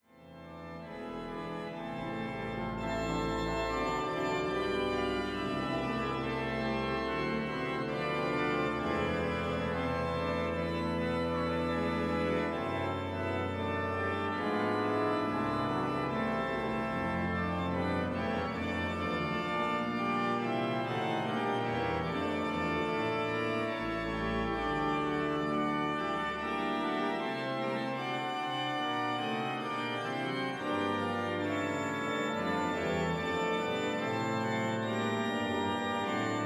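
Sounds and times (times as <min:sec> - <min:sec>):
Hinsz pipe organ sound sample in Appingedam: 0:00.1 - 0:36.4.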